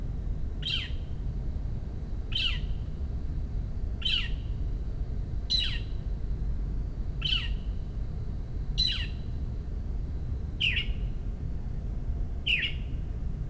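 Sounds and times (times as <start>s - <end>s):
low steady rumble: 0.0s - 13.4s
Northern mockingbird giving harsh protest calls in Maryland, USA: 0.6s - 1.0s, 2.3s - 2.8s, 4.0s - 4.5s, 5.5s - 5.9s, 7.2s - 7.7s, 8.8s - 9.2s, 10.6s - 11.0s, 12.5s - 12.9s.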